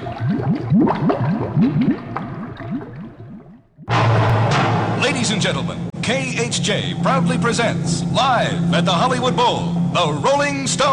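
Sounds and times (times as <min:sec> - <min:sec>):
water gurgling and sloshing into a boat: 0:00.0 - 0:04.8
speech: 0:05.2 - 0:10.9.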